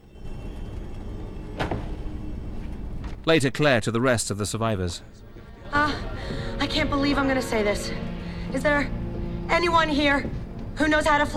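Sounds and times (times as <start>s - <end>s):
low rumbling background: 0.0s - 11.3s
door slamming shut: 1.6s - 2.0s
speech: 3.2s - 6.0s, 6.6s - 11.3s.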